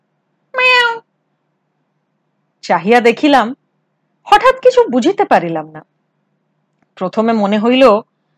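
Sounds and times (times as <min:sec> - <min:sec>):
cat meowing: 0:00.6 - 0:01.0
speech: 0:02.7 - 0:03.6, 0:04.2 - 0:05.9, 0:07.0 - 0:08.1.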